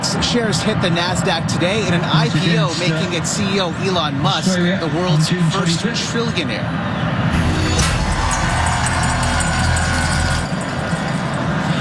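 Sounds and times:
speech: 0:00.1 - 0:07.3
large crowd cheering and clapping at stock exchange opening: 0:07.1 - 0:11.7
crowd whoops: 0:07.8 - 0:10.6.

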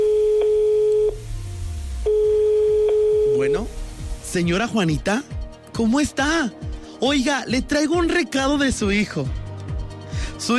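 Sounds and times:
steady electronic telephone tone while a call is dialed: 0:00.0 - 0:01.2, 0:02.0 - 0:03.7
speech: 0:04.4 - 0:09.4, 0:10.4 - 0:10.5.

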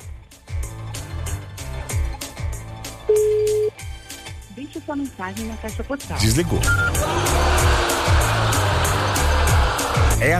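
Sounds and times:
music: 0:00.0 - 0:10.3
telephone ringback tone: 0:03.1 - 0:03.7
speech: 0:04.8 - 0:07.9, 0:10.2 - 0:10.3
laughter: 0:06.9 - 0:10.2.

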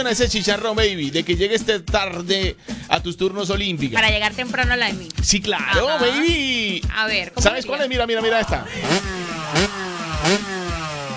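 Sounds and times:
speech: 0:00.0 - 0:10.6
motorcycle engine revving: 0:08.7 - 0:11.1.

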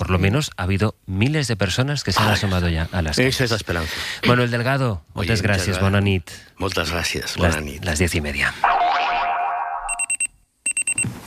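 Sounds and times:
speech: 0:00.1 - 0:08.8
springy descending boing: 0:08.6 - 0:10.0
alarm clock shrill electronic beeping: 0:09.7 - 0:11.0.

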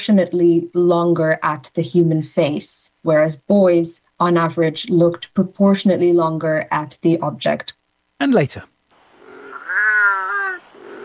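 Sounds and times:
speech: 0:00.0 - 0:08.8
wild cat yowling: 0:09.2 - 0:11.0.

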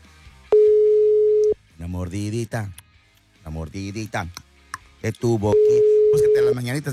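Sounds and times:
electronic phone ringing tone of a dialed call: 0:00.5 - 0:01.6, 0:05.6 - 0:06.6
speech: 0:01.9 - 0:02.8, 0:03.5 - 0:04.4, 0:05.0 - 0:06.9.

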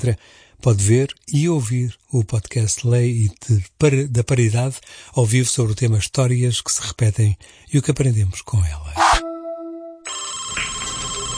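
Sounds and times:
speech: 0:00.0 - 0:09.3
telephone ringing with electronic tones: 0:10.0 - 0:11.3.

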